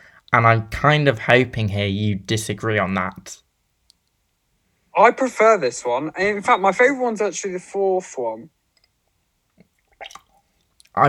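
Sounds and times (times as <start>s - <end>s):
speech: 0.3s - 3.4s, 5.0s - 8.6s
person spitting out a mouthful of water: 9.6s - 11.0s.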